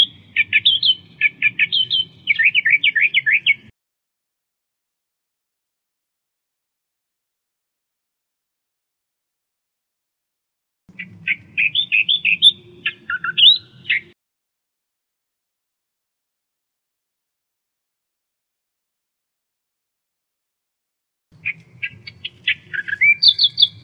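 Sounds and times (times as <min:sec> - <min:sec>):
Australian reed warbler singing: 0:00.0 - 0:03.7, 0:10.9 - 0:14.1, 0:21.4 - 0:23.8.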